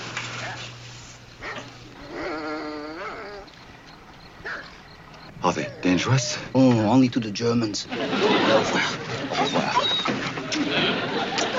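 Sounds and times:
steady low hum: 0:00.0 - 0:11.5
prison guard dog barking and yelping: 0:00.4 - 0:00.8, 0:01.4 - 0:03.6, 0:04.2 - 0:06.4, 0:09.3 - 0:10.3
speech: 0:05.5 - 0:10.1
laughter: 0:07.7 - 0:11.5.

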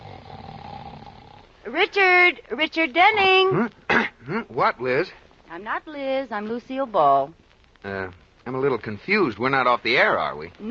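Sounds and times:
man snoring: 0:00.0 - 0:01.4
speech: 0:01.6 - 0:10.6.

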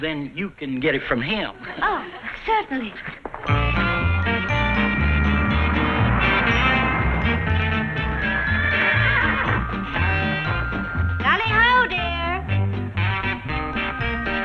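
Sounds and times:
speech: 0:00.0 - 0:03.8
musical backing: 0:03.4 - 0:14.4
horse whinnying loudly: 0:06.2 - 0:09.8.

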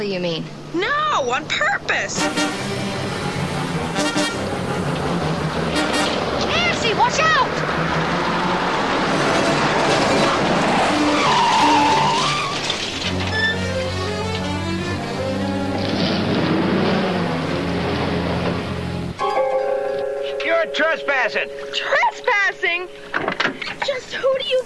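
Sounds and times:
speech: 0:00.0 - 0:03.1, 0:06.9 - 0:08.3, 0:20.6 - 0:22.0, 0:22.6 - 0:24.6
heavy farm tractor engine roaring: 0:01.3 - 0:24.6
car tires skidding and squealing: 0:03.1 - 0:14.4, 0:15.0 - 0:18.8.

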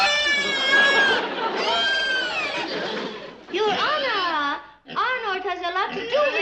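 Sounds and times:
pig squealing oink: 0:00.0 - 0:02.7, 0:04.9 - 0:06.3
laughter: 0:00.0 - 0:04.0.

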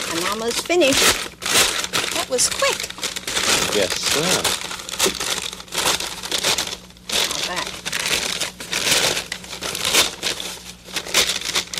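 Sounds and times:
paper bag crinkling: 0:00.0 - 0:11.7
speech: 0:00.1 - 0:01.4, 0:02.3 - 0:03.0, 0:03.7 - 0:05.4.

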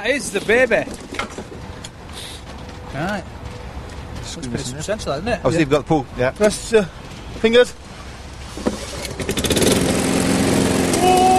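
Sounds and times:
speech: 0:00.0 - 0:01.1, 0:02.9 - 0:03.4, 0:04.3 - 0:07.8
small petrol lawnmower engine sputtering and revving hard: 0:08.6 - 0:11.3.

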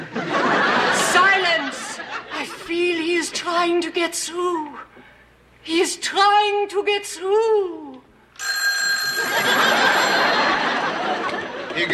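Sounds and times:
laughter: 0:00.0 - 0:02.9, 0:09.2 - 0:11.9
speech: 0:03.6 - 0:04.9, 0:05.6 - 0:08.5, 0:11.8 - 0:11.9
old-fashioned telephone bell ringing: 0:08.4 - 0:10.9.

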